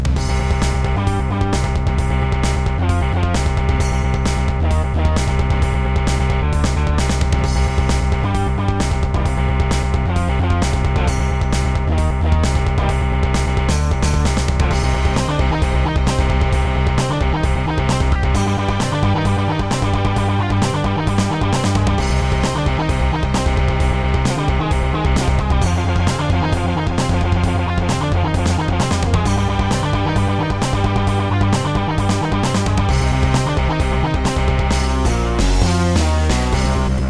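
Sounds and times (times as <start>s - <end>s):
Roland SonicCell GM2 template synthesizer sounds: 0.2s - 37.0s.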